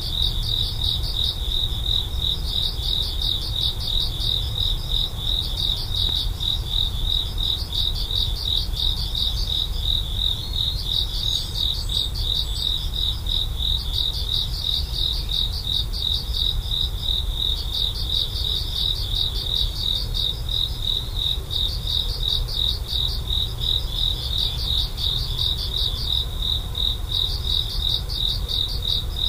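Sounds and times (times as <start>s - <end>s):
cricket chirping: 0.0s - 29.2s.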